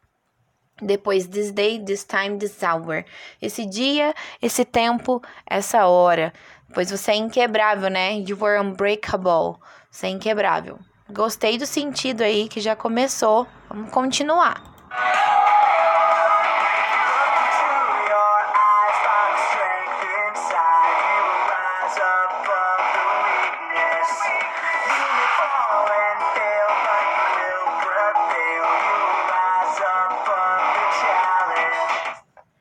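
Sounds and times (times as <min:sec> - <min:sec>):
speech: 0:00.8 - 0:15.4
rock song through a small speaker: 0:14.9 - 0:32.4.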